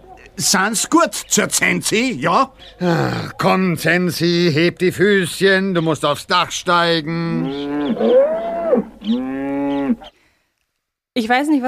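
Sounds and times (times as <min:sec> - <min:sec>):
speech: 0:00.4 - 0:09.3, 0:11.2 - 0:11.6
cow mooing: 0:07.1 - 0:10.1.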